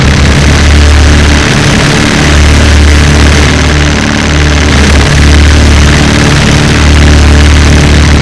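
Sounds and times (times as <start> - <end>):
zombie butcher ambience: 0.0 - 8.2.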